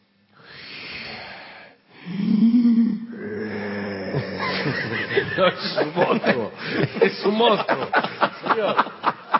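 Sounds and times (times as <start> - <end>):
voice imitating a man's loud heavy breathing: 0.4 - 4.4
laughter: 4.1 - 9.3
speech: 4.7 - 9.2.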